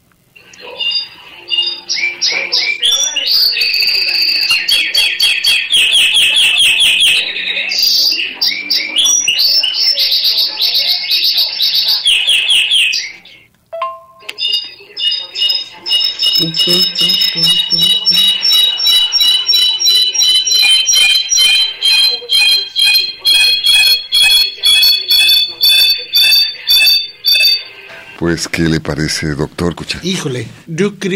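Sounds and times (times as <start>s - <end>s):
clarín songbird singing: 0.5s - 13.3s, 14.3s - 27.7s
speech: 3.4s - 4.0s, 16.7s - 17.6s, 28.6s - 31.1s.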